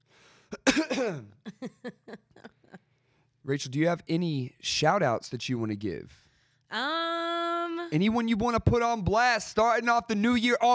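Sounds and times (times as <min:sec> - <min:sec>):
short coughs and throat-clearing: 0:00.5 - 0:01.6
harsh cough: 0:00.5 - 0:02.6
speech: 0:00.8 - 0:02.2, 0:03.5 - 0:07.1, 0:07.9 - 0:10.7.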